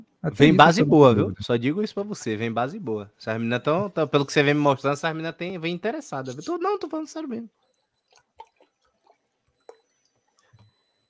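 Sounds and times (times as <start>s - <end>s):
speech: 0.2s - 7.6s
swallowing clicks: 7.7s - 10.7s
person sipping water: 8.1s - 10.7s.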